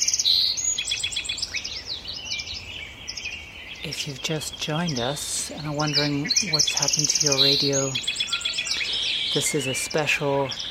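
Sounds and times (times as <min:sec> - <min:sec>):
song sparrows, common yellowthroats, American robins and red-winged blackbirds singing at dawn: 0:00.0 - 0:10.6
speech: 0:03.8 - 0:08.2, 0:09.3 - 0:10.6.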